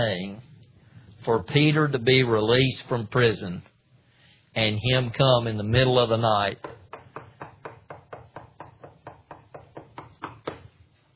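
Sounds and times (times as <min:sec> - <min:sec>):
speech: 0:00.0 - 0:00.5, 0:01.2 - 0:03.7, 0:04.5 - 0:06.8
knocking on a door: 0:06.6 - 0:10.7.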